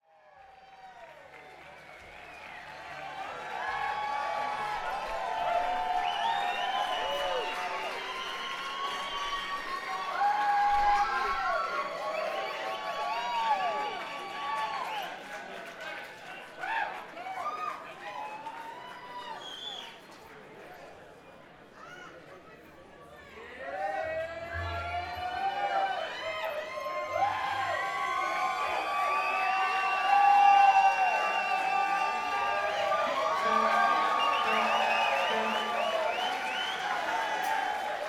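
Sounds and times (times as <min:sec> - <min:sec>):
crowd: 0:00.0 - 0:38.0
instruments tuning up: 0:33.1 - 0:37.6.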